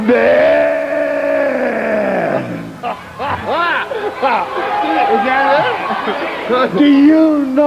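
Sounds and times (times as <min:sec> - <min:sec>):
man imitating a cow bawling in pain as it is branded with a hot iron: 0:00.0 - 0:02.8
speech: 0:00.1 - 0:00.4, 0:04.2 - 0:07.6
laughter: 0:01.4 - 0:07.5.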